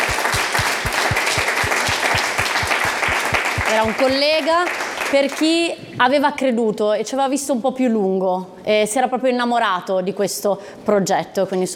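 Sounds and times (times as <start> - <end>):
crowd applause: 0.0 - 5.1
speech: 3.8 - 11.7.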